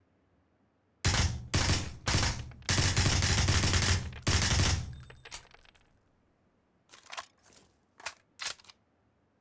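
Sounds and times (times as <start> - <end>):
suppressed M16 rifle burst fire: 1.1 - 5.5.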